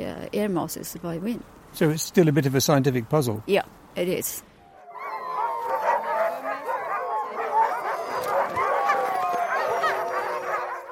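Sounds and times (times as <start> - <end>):
speech: 0.0 - 4.5
pack of sled dogs barking, yipping and howling: 4.6 - 10.9.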